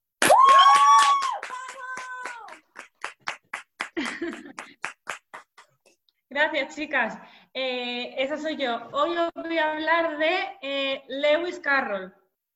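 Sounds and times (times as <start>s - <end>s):
loud whooping cheer: 0.2s - 2.6s
applause welcoming a contributor: 0.2s - 5.8s
speech: 6.4s - 12.2s.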